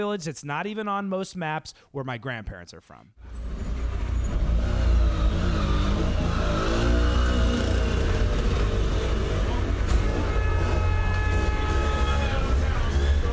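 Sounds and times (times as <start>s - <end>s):
speech: 0.0s - 3.4s
rental car engine and road noise driving through city streets: 3.2s - 13.3s.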